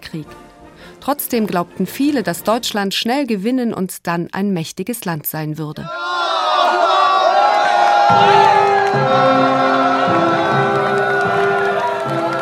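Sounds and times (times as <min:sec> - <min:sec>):
speech: 0:00.1 - 0:00.4, 0:01.0 - 0:06.0, 0:08.1 - 0:10.2
large crowd cheering and shouting seeing soldiers off: 0:05.9 - 0:12.4.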